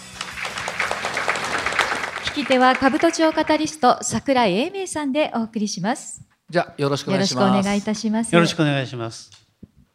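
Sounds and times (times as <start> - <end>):
audience applause welcoming a company managing director: 0.0 - 3.8
speech: 2.4 - 9.4.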